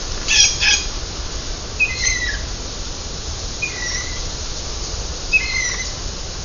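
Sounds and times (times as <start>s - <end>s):
blue jays singing: 0.2s - 1.0s, 1.7s - 2.6s, 3.5s - 6.1s.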